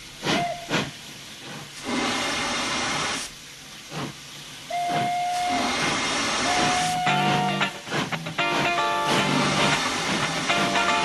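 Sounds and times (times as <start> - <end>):
metro train hissing air and rumbling: 0.0 - 11.0.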